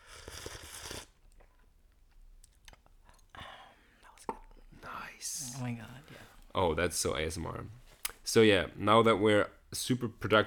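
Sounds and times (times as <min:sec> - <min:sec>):
slurping hot tea from a cup: 0:00.0 - 0:01.2
speech: 0:05.2 - 0:10.4.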